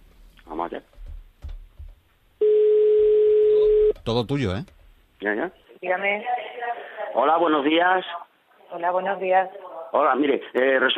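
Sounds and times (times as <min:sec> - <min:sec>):
ringing tone of an outgoing telephone call: 0:02.4 - 0:04.0
speech: 0:04.0 - 0:06.4, 0:07.2 - 0:10.9.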